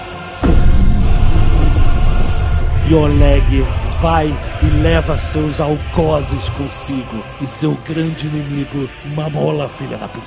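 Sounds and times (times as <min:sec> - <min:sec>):
muffled boom of a giant explosion heard from inside an elevator: 0:00.4 - 0:08.2
sustained low rumble of a giant explosion with seismic tremor: 0:00.4 - 0:08.5
speech: 0:02.9 - 0:10.2.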